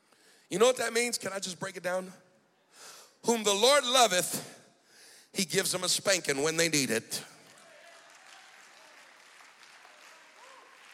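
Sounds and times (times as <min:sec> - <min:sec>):
speech: 0:00.5 - 0:04.6, 0:05.3 - 0:07.4
church audience clapping during a sermon: 0:07.3 - 0:10.9.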